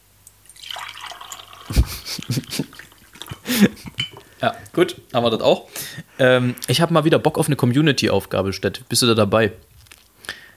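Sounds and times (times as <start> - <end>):
water pouring and splashing during watering: 0.4 - 4.2
laughter: 1.7 - 3.9
speech: 1.8 - 2.7, 3.5 - 9.7.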